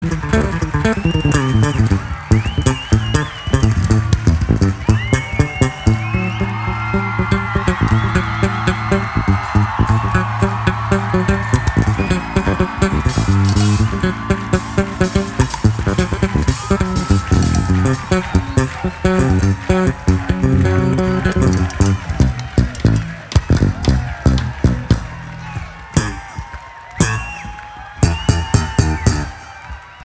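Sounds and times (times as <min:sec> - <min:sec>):
bass guitar jam: 0:00.0 - 0:26.4, 0:27.0 - 0:29.4.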